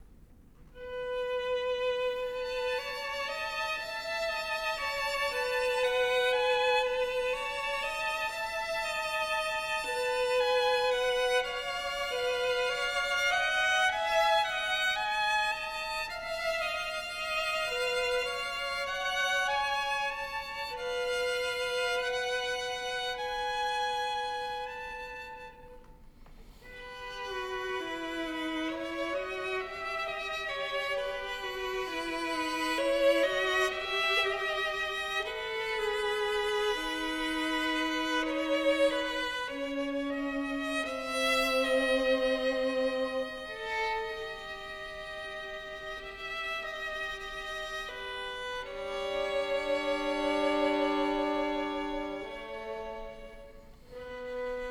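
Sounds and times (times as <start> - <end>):
two violins playing a duo: 0.0 - 54.6.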